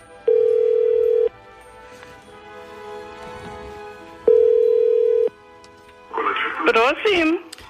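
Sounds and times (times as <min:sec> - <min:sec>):
telephone ringback tone: 0:00.2 - 0:01.3, 0:04.3 - 0:05.3
speech: 0:07.0 - 0:07.4.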